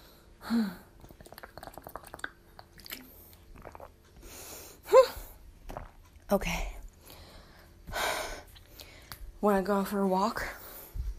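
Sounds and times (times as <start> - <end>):
speech: 0.5 - 0.8, 6.3 - 6.7, 9.4 - 10.6
soft wet swallowing: 1.0 - 4.0, 5.7 - 6.1
person gulping water: 1.0 - 4.2, 5.0 - 6.2.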